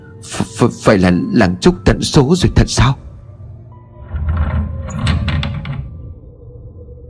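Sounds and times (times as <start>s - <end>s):
speech: 0.2s - 3.0s
wooden window shutter flung open by wind, rattling knocks and creaks: 4.2s - 6.0s.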